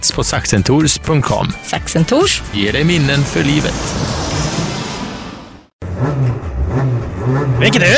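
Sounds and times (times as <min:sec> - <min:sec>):
speech: 0:00.0 - 0:04.3, 0:07.6 - 0:07.9
folkrace car engines revving while warming up: 0:02.4 - 0:07.9.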